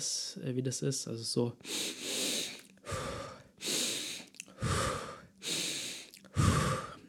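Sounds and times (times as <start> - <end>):
speech: 0.0 - 2.1
rapid deep breathing in and out: 1.6 - 7.0.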